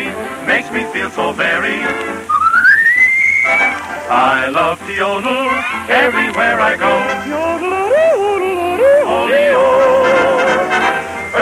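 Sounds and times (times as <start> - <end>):
speech: 0.5 - 2.3, 3.5 - 8.3
person whistling a tune: 2.3 - 3.9, 7.8 - 10.2.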